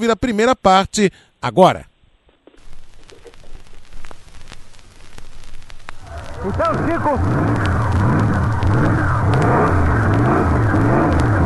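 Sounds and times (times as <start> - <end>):
speech: 0.0 - 1.9, 6.4 - 7.8
crackling noise: 1.6 - 11.4
racing car engine revving at a motor race: 6.0 - 11.4.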